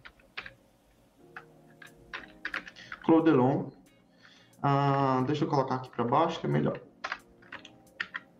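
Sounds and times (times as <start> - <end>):
typing on a computer keyboard: 0.0 - 0.6, 1.3 - 3.1, 5.8 - 8.3
speech: 3.1 - 3.8, 4.6 - 6.9.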